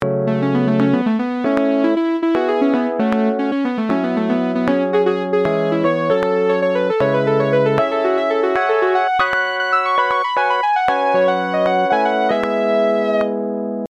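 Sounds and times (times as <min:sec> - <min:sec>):
synth solo: 0:00.3 - 0:13.4.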